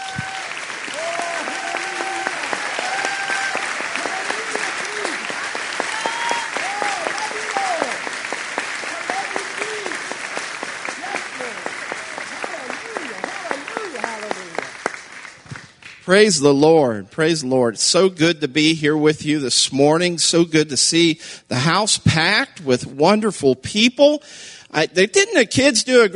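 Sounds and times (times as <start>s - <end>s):
scattered voices calling out and cheering: 0.0s - 14.8s
large crowd clapping: 0.0s - 16.2s
speech: 16.1s - 26.1s.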